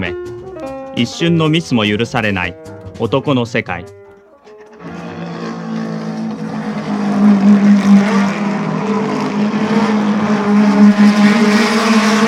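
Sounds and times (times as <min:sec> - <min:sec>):
speech: 0:01.0 - 0:04.0
racing car engines in a machine race: 0:03.9 - 0:12.2.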